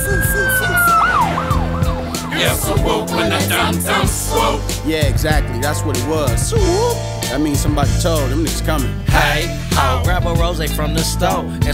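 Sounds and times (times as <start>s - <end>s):
emergency vehicle siren wailing and whooping: 0.3s - 4.1s
speech: 2.4s - 11.7s.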